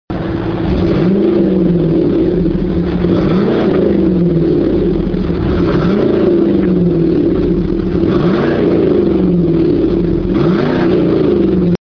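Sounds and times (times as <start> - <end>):
Camaro Z28 5.7L engine with dual exhaust: 0.1 - 11.8.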